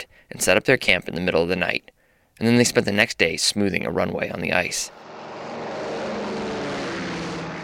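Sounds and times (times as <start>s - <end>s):
speech: 0.0s - 5.0s
propeller plane droning overhead over a camp on the ice: 4.9s - 7.6s.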